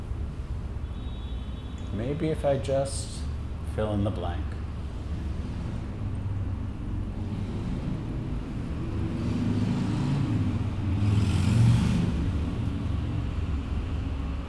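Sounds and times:
street traffic rumbling: 0:00.0 - 0:14.4
speech: 0:02.0 - 0:03.2, 0:03.8 - 0:04.6
car passing by: 0:04.4 - 0:14.4.

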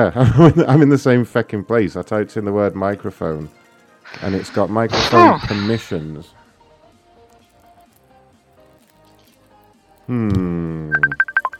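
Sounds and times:
speech: 0:00.0 - 0:06.4, 0:10.1 - 0:11.0
phone ringing with an incoming call: 0:11.0 - 0:11.5.

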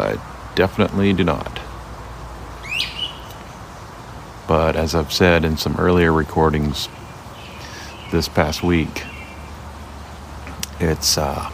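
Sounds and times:
speech: 0:00.0 - 0:01.6, 0:04.5 - 0:07.0, 0:08.1 - 0:09.1, 0:10.8 - 0:11.5
steady low outdoor noise: 0:00.0 - 0:11.5
unidentified bird call in a yard: 0:02.6 - 0:03.6, 0:06.8 - 0:09.6.

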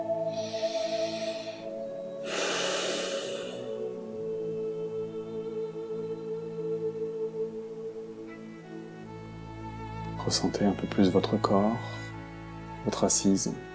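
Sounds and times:
soft sustained musical drone: 0:00.0 - 0:13.7
slow deep breath in and out: 0:00.3 - 0:03.9
speech: 0:10.3 - 0:12.0, 0:12.8 - 0:13.7.

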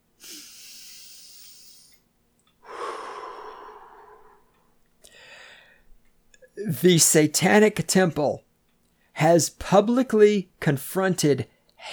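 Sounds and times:
person breathing deeply: 0:00.2 - 0:02.0, 0:02.6 - 0:05.9
speech: 0:06.6 - 0:08.4, 0:09.2 - 0:11.9.

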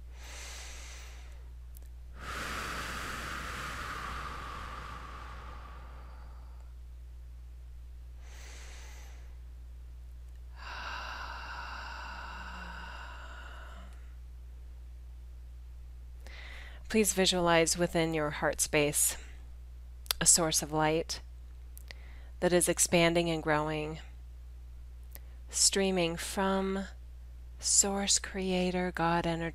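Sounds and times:
steady low hum: 0:00.0 - 0:22.6
deep breathing during a guided relaxation session: 0:00.1 - 0:01.5, 0:02.2 - 0:06.8, 0:08.2 - 0:09.4, 0:10.5 - 0:14.2, 0:16.2 - 0:16.9, 0:21.9 - 0:22.4
speech: 0:16.9 - 0:19.2, 0:20.2 - 0:21.3, 0:22.4 - 0:24.1, 0:25.5 - 0:27.0, 0:27.6 - 0:29.5.

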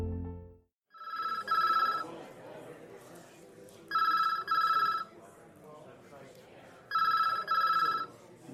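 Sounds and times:
telephone ringing at a police station in Seattle: 0:00.9 - 0:02.2, 0:03.9 - 0:05.1, 0:06.9 - 0:08.1
low murmur of noise: 0:01.2 - 0:08.5.

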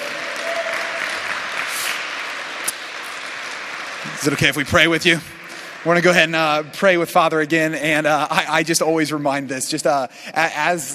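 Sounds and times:
crowd applauding: 0:00.0 - 0:08.1
speech: 0:04.0 - 0:10.9.

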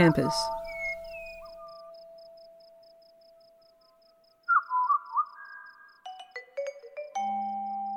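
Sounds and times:
speech: 0:00.0 - 0:00.6
pied butcherbird song: 0:00.0 - 0:02.7, 0:03.4 - 0:06.1.

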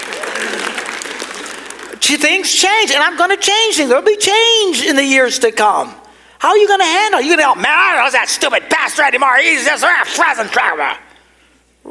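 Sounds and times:
crowd applauding: 0:00.0 - 0:02.1
speech: 0:02.0 - 0:11.0.

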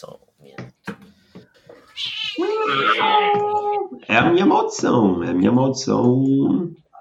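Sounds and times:
speech: 0:00.0 - 0:00.3, 0:02.0 - 0:06.8
cat meowing: 0:01.8 - 0:03.9.

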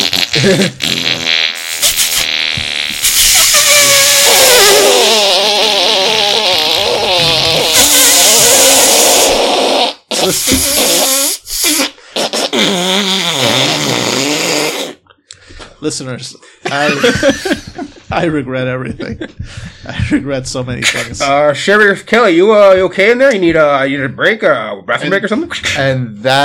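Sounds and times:
person vocally imitating fart noises by blowing raspberries: 0:00.0 - 0:15.1, 0:17.0 - 0:18.3
speech: 0:00.4 - 0:00.9, 0:15.8 - 0:26.4
laughter: 0:16.6 - 0:21.2.

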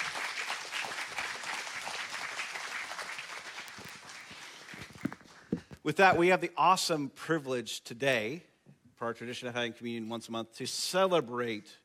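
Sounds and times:
audience applauding panelists: 0:00.0 - 0:05.7
speech: 0:05.8 - 0:11.8.

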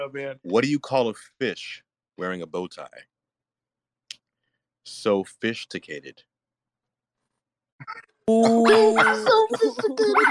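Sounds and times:
speech: 0:00.0 - 0:03.1, 0:04.8 - 0:06.3, 0:07.8 - 0:10.3
dog barking and yowling: 0:08.6 - 0:10.3.

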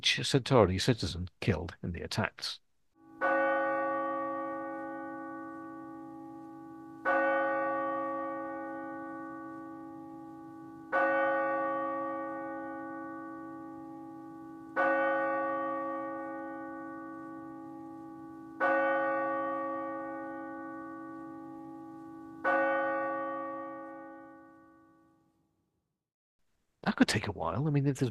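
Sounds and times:
speech: 0:00.0 - 0:02.6, 0:27.6 - 0:28.0
large church bell tolling: 0:03.0 - 0:25.3.

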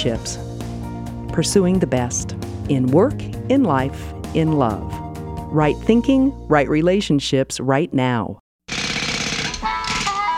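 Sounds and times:
speech: 0:00.0 - 0:00.5, 0:01.3 - 0:08.4
jackhammer pounding: 0:08.7 - 0:10.3.

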